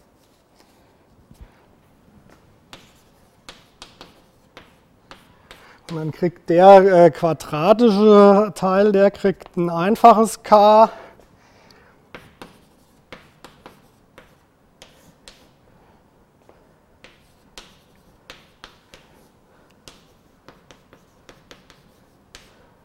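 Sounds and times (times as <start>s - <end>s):
writing strokes during a mathematics explanation: 2.7s - 6.0s, 12.1s - 15.6s, 17.0s - 22.8s
speech: 5.9s - 11.0s.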